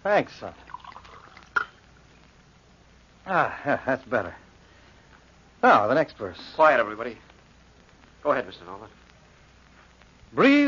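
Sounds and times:
speech: 0:00.0 - 0:00.6, 0:03.3 - 0:04.4, 0:05.6 - 0:07.3, 0:08.2 - 0:09.0, 0:10.3 - 0:10.6
water pouring into a glass: 0:00.5 - 0:01.8
glass clink: 0:00.8 - 0:01.8.

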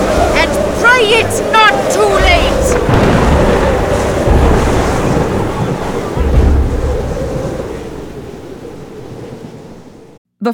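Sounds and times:
deep waves surging and crashing on a stormy sea: 0:00.0 - 0:10.2
heavy wind in a storm at sea: 0:00.0 - 0:10.2.

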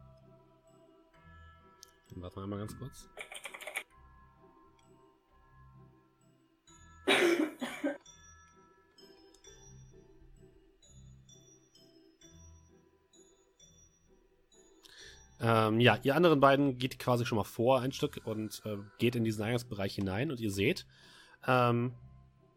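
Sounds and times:
speech: 0:02.1 - 0:03.3, 0:15.5 - 0:22.0
computer keyboard typing a message: 0:03.2 - 0:03.9
cough-like burst: 0:07.1 - 0:08.0.

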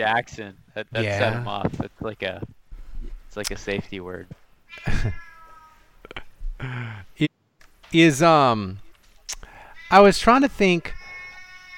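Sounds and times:
speech: 0:00.0 - 0:02.6, 0:03.3 - 0:05.3, 0:06.6 - 0:07.3, 0:07.9 - 0:08.8, 0:09.9 - 0:11.0
cat meowing loudly: 0:04.7 - 0:05.8, 0:09.7 - 0:11.7
laughter: 0:04.8 - 0:05.2.

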